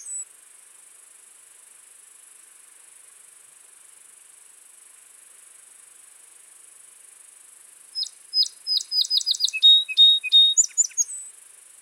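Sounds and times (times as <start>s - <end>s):
Song sparrow Melospiza melodia singing: 0.0s - 0.2s, 8.0s - 11.2s.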